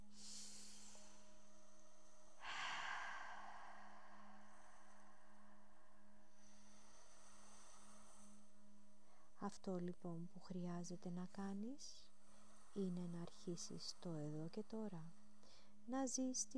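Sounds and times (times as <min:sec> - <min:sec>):
single deep breath drawn in: 0:00.0 - 0:09.3
steady low electrical hum: 0:00.0 - 0:16.5
speech: 0:09.4 - 0:12.1, 0:12.7 - 0:16.5.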